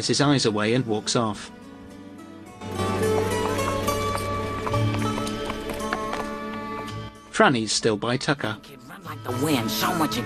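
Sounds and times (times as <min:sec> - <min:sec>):
speech: 0:00.0 - 0:01.6, 0:07.4 - 0:10.2
horse hooves clip-clopping at a trot: 0:02.6 - 0:07.2.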